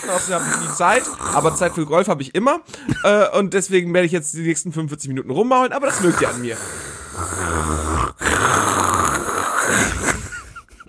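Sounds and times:
person imitating heavy snoring with rasping breath: 0.0 - 2.1, 5.8 - 10.6
speech: 0.0 - 7.9.

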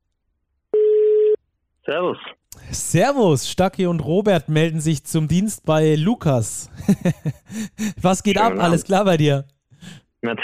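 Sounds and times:
electronic telephone ringing tone while placing a call: 0.8 - 1.4
speech: 1.9 - 10.4
laughter: 6.7 - 8.9.

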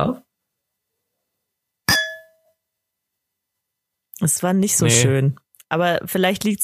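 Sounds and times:
speech: 0.0 - 0.2, 4.2 - 6.6
glasses clinking in a toast: 1.9 - 2.4.

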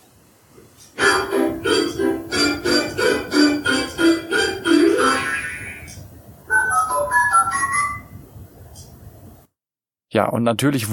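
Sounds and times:
higher-pitched electronic toy jingle: 1.0 - 5.9, 6.5 - 8.1
tinny electronic baby activity table melody: 1.0 - 8.2
speech: 10.2 - 10.9.

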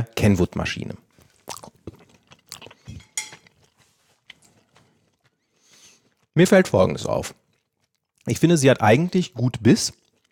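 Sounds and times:
speech: 0.0 - 1.0, 6.4 - 7.4, 8.2 - 10.0
faint chewing of spaghetti made from durum wheat semolina and water: 1.1 - 6.4, 7.0 - 8.4, 9.9 - 10.2
cutlery clinking and scraping against a plate: 2.9 - 3.8.

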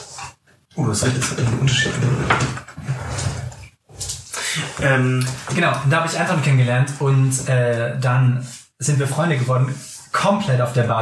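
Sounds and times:
speech: 0.8 - 3.3, 4.8 - 11.0
chair scraping across the floor as it is moved off a cable: 1.0 - 5.7.

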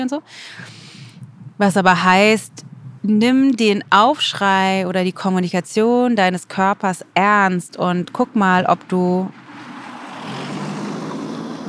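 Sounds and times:
speech: 0.0 - 0.8, 1.6 - 9.4
car passing by: 9.3 - 11.6.

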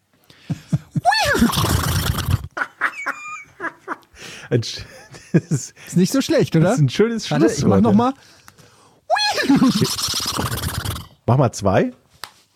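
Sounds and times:
people laughing: 0.5 - 1.5, 2.6 - 5.8, 9.3 - 10.0
person imitating a horse neighing: 1.0 - 2.6, 9.1 - 11.2
speech: 4.5 - 8.4, 9.6 - 10.2, 11.3 - 12.0.

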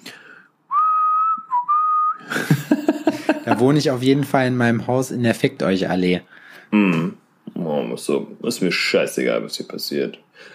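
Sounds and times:
person whistling a tune: 0.7 - 2.3
laughter: 2.2 - 3.7
speech: 3.1 - 10.5.

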